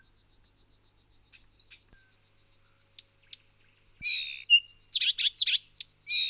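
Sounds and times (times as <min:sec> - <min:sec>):
songbird singing: 0:01.3 - 0:06.2.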